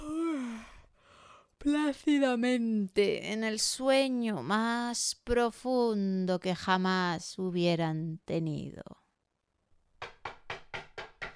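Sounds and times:
speech: 0:01.6 - 0:09.0
loud rapid knocking on a door: 0:10.0 - 0:11.3.

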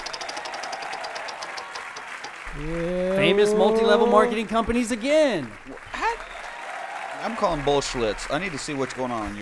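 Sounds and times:
spun prize wheel ticking: 0:00.0 - 0:05.0
speech: 0:02.5 - 0:05.8, 0:07.2 - 0:09.3.

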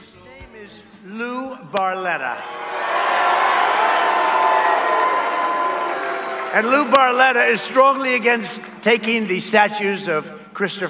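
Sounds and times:
speech: 0:00.7 - 0:02.8, 0:06.5 - 0:10.8
large raucous rally crowd cheering and roaring: 0:02.2 - 0:08.2.

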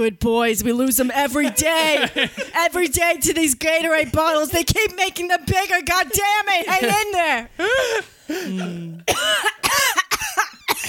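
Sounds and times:
speech: 0:00.0 - 0:10.0
laughter: 0:01.4 - 0:02.7, 0:06.3 - 0:09.0
person coughing harshly: 0:07.8 - 0:10.8
person making a strained groaning vocal sound: 0:07.9 - 0:09.1.

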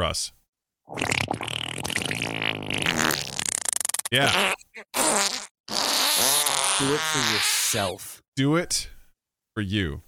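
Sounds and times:
speech: 0:00.0 - 0:02.8, 0:04.1 - 0:04.6, 0:06.8 - 0:08.9, 0:09.6 - 0:10.0
cartoonish fart sound effect from a soundboard: 0:00.9 - 0:08.0.

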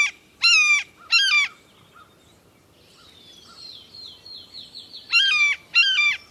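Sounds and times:
blue jay imitating red-shouldered hawk screams: 0:00.0 - 0:01.6, 0:05.1 - 0:06.2.

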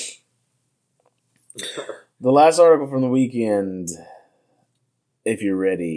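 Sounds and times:
person coughing: 0:01.6 - 0:02.1
speech: 0:01.6 - 0:04.2, 0:05.2 - 0:05.9.

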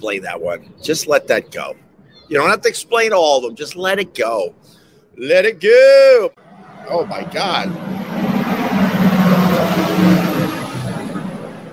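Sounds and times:
speech: 0:00.0 - 0:07.9
large bus roaring past at speed with engine rumble and tire noise: 0:06.4 - 0:11.7.

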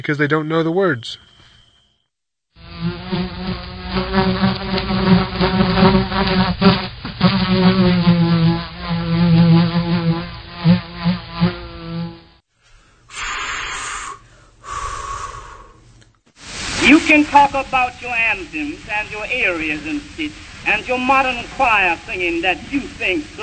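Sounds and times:
speech: 0:00.0 - 0:01.3, 0:04.1 - 0:09.9, 0:17.1 - 0:23.4
bees buzzing: 0:02.6 - 0:12.3, 0:16.4 - 0:23.4.

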